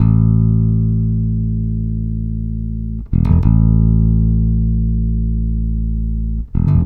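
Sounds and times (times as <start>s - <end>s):
country bass breakdown: 0.0s - 6.8s.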